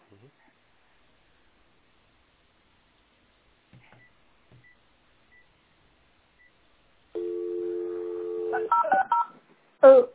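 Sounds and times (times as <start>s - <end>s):
landline telephone dial tone: 7.2s - 8.7s.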